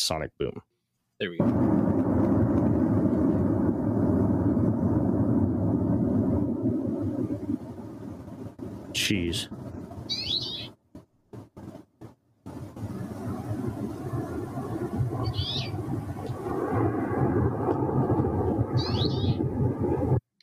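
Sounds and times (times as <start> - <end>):
speech: 0.0 - 2.1, 9.0 - 10.2
avalanche rumble: 1.4 - 20.2
bird chirps: 10.0 - 10.8, 15.2 - 15.8, 18.8 - 19.4.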